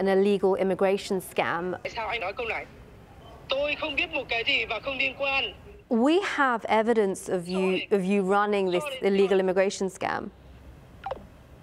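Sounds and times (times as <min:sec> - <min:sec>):
speech: 0:00.0 - 0:02.8, 0:03.5 - 0:10.4
phone call hang-up click: 0:11.0 - 0:11.3.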